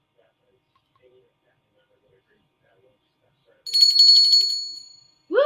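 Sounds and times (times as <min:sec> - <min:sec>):
small souvenir replica Liberty Bell ringing: 0:03.7 - 0:05.3.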